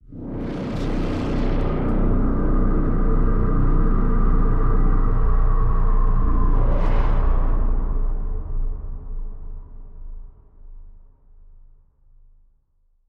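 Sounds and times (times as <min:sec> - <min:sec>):
scary swell: 0:00.5 - 0:10.3.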